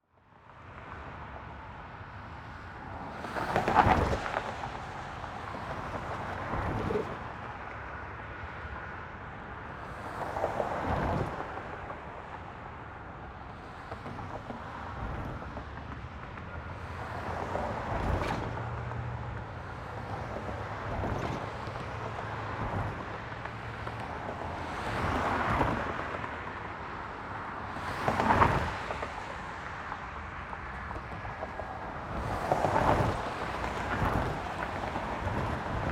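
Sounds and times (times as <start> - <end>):
busy traffic over railroad tracks: 0.1 - 35.9.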